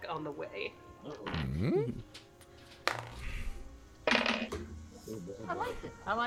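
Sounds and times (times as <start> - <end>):
speech: 0.1 - 2.3, 4.5 - 6.2
murmured voice: 1.1 - 2.1
die clattering onto a hard tabletop: 4.1 - 4.7.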